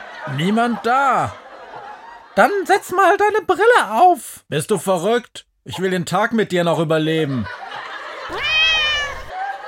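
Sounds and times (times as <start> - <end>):
laughter: 0.0 - 2.9, 7.1 - 9.6
speech: 0.2 - 1.4, 2.4 - 7.6
cat meowing: 8.3 - 9.3.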